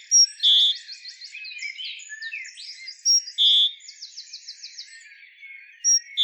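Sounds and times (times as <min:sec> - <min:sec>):
great tit Parus major giving high note and even whistle: 0:00.0 - 0:01.0, 0:01.7 - 0:03.9, 0:05.8 - 0:06.2.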